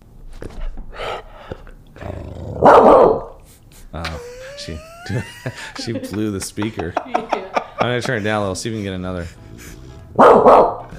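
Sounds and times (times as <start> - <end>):
female dog barking gruffly: 2.6 - 3.4, 10.2 - 10.9
laughter: 3.4 - 10.1
speech: 4.7 - 10.6.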